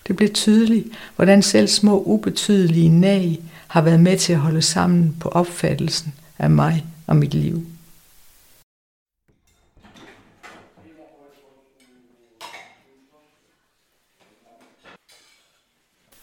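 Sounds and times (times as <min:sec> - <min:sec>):
speech: 0:00.1 - 0:07.7
dishes and cutlery clattering and clinking in a sink: 0:09.3 - 0:13.2, 0:14.2 - 0:15.8.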